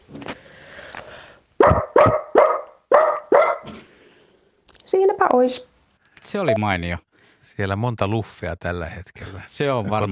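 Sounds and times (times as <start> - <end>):
person imitating a dog barking: 1.6 - 2.4
speech: 4.9 - 5.7, 6.3 - 10.0.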